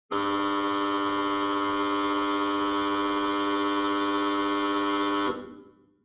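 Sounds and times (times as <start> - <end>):
opening buzzer: 0.1 - 5.8.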